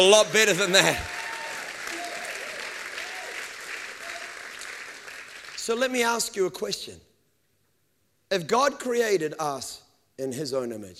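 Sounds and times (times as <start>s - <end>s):
speech: 0.0s - 1.1s, 5.7s - 7.0s, 8.3s - 10.9s
room full of people applauding: 0.0s - 5.6s.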